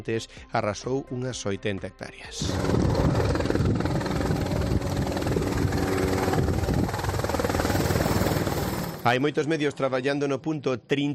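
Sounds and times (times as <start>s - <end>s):
speech: 0.0s - 3.9s, 9.0s - 11.1s
firefighting helicopter working a forest fire in Barreiros passing overhead: 2.4s - 10.3s.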